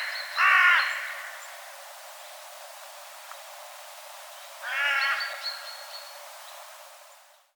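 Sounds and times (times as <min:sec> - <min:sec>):
carrion crow Corvus corone giving hoarse caws: 0:00.0 - 0:01.4, 0:04.6 - 0:05.4.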